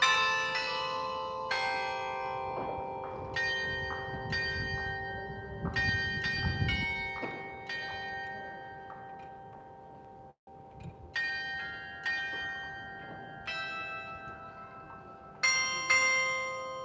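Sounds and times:
clock tower bells chiming a slow melody striking twelve: 0:00.0 - 0:16.8.

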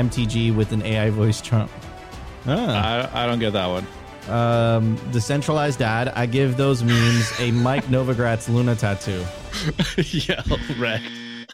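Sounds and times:
speech: 0:00.0 - 0:11.2
laughter: 0:02.6 - 0:03.1, 0:06.8 - 0:08.4, 0:09.5 - 0:11.5
buzzer sound effect with pulsing bursts and flat buzzing tone: 0:10.6 - 0:11.5.

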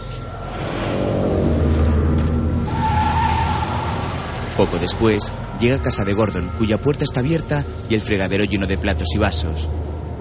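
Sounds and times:
car engine roaring while reversing out of a motel lot: 0:00.4 - 0:05.9
car skidding away with a high squealing tone: 0:02.5 - 0:06.7
speech: 0:04.6 - 0:09.9.

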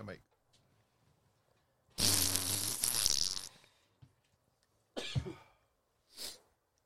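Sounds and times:
person blowing their nose: 0:02.0 - 0:03.6, 0:06.1 - 0:06.5.

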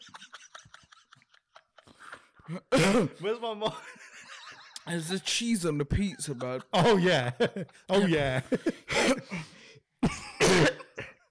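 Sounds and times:
laughter: 0:00.0 - 0:02.5, 0:03.5 - 0:09.6
loud raspy throat clearing: 0:02.0 - 0:03.2, 0:10.0 - 0:11.2
speech: 0:02.5 - 0:04.0, 0:04.8 - 0:09.5.

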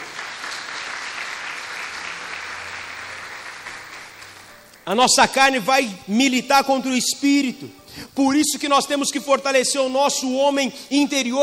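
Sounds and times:
congregation applauding: 0:00.0 - 0:04.7
speech: 0:04.9 - 0:11.4.

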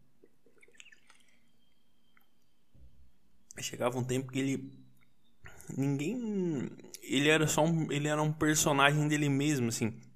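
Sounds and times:
drinking water with wet mouth clicks and sips: 0:00.2 - 0:01.5
speech: 0:03.6 - 0:04.8, 0:05.7 - 0:10.1.

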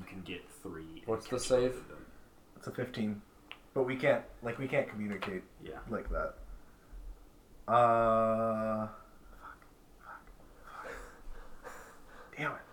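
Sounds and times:
speech: 0:00.2 - 0:02.0, 0:02.6 - 0:06.4, 0:07.7 - 0:09.0, 0:12.4 - 0:12.7
soft airy breaths: 0:06.4 - 0:07.4, 0:09.0 - 0:12.7
raspy voiced breathing into the microphone: 0:09.4 - 0:12.7.

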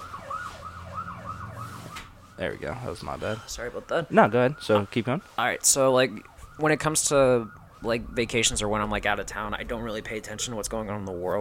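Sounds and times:
emergency vehicle siren yelping through open window: 0:00.0 - 0:11.4
low rumble of traffic: 0:00.0 - 0:11.4
speech: 0:02.4 - 0:11.4.

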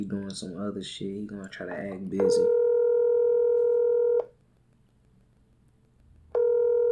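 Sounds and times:
speech: 0:00.0 - 0:02.6
electronic ringback tone of outgoing phone call ringing unanswered: 0:02.2 - 0:04.3, 0:06.4 - 0:06.9.

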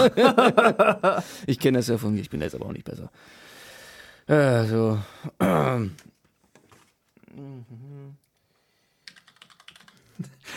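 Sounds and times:
laughter: 0:00.0 - 0:01.2
speech: 0:00.0 - 0:03.4, 0:04.3 - 0:06.1, 0:07.4 - 0:08.2
person singing or humming a short tone: 0:07.3 - 0:08.3
crisp computer keyboard typing picked up by a keyboard microphone for ASMR: 0:09.0 - 0:10.2.

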